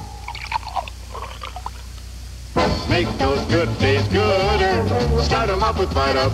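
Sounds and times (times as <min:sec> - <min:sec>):
juice pouring from a container: 0:00.0 - 0:02.0
speech: 0:02.9 - 0:06.3.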